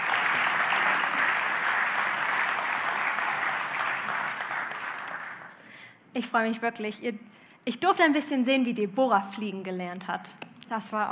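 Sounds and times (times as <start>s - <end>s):
audience applause: 0.0s - 5.6s
speech: 6.2s - 11.1s.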